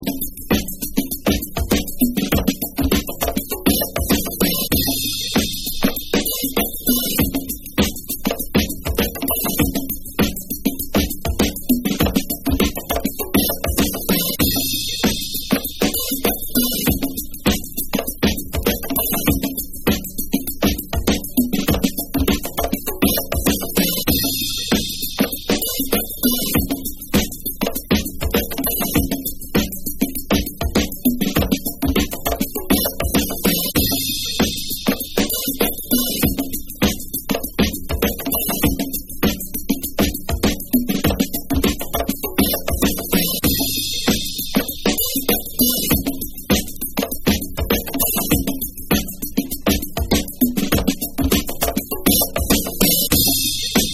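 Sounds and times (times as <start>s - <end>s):
rich drum beat: 0.0s - 53.9s.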